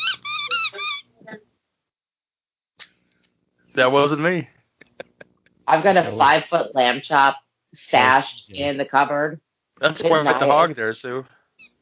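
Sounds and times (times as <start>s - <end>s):
squeaky dog toy being squeezed: 0.0s - 1.2s, 11.6s - 11.8s
speech: 3.8s - 4.6s, 5.7s - 11.7s.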